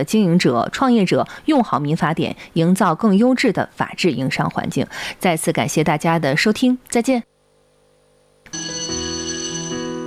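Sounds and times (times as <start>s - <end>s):
speech: 0.0s - 7.3s
electric school bell ringing at a high-plateau school in Qinghai: 8.5s - 10.0s.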